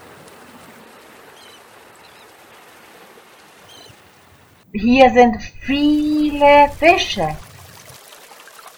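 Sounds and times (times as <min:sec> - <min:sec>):
speech: 0:04.7 - 0:07.4
sea waves: 0:04.8 - 0:07.4.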